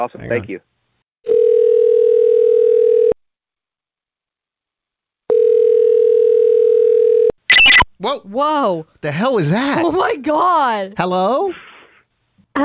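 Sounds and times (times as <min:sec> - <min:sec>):
speech: 0:00.0 - 0:00.7, 0:08.0 - 0:11.6
telephone dial tone while placing a call: 0:01.3 - 0:03.2, 0:05.3 - 0:07.8.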